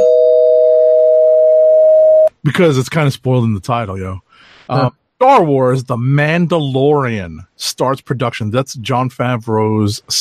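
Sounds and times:
loud bell-like electronic chime tone: 0:00.0 - 0:02.3
speech: 0:02.4 - 0:10.1.

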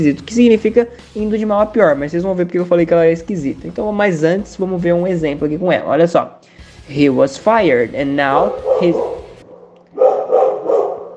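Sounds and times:
speech: 0:00.0 - 0:09.2
small dog barking short yappy barks: 0:08.5 - 0:11.1.

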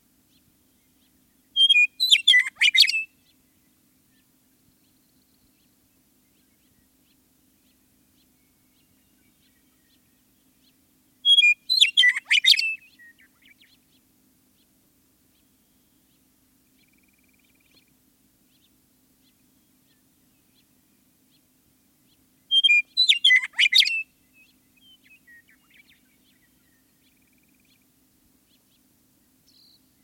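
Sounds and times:
faint low hum: 0:00.0 - 0:12.1, 0:12.7 - 0:23.0, 0:24.0 - 0:30.0
western meadowlark singing: 0:00.2 - 0:30.0.

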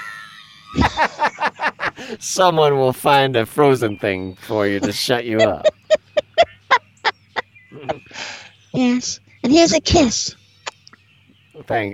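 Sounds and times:
person screaming and yelping: 0:00.0 - 0:00.5
laughter: 0:00.0 - 0:02.2, 0:04.6 - 0:08.2
speech: 0:02.0 - 0:05.8, 0:08.8 - 0:10.4, 0:11.6 - 0:11.9.

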